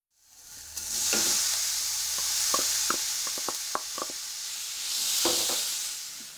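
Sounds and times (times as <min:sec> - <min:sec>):
minced meat with chopped ginger stir-frying in a pan: 0:00.1 - 0:06.3
wooden spatula scraping and knocking a pan: 0:00.9 - 0:04.2.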